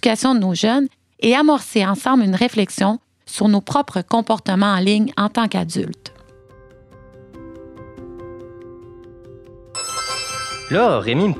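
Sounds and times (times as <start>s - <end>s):
speech: 0.0s - 6.2s, 10.7s - 11.3s
overlapping electronic phone notification chimes: 9.8s - 11.3s.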